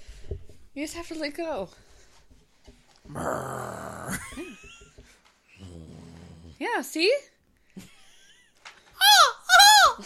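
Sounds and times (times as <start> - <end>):
speech: 0.8 - 1.9, 3.1 - 4.7, 6.6 - 7.3
person imitating a growl: 3.1 - 4.4, 5.6 - 6.6.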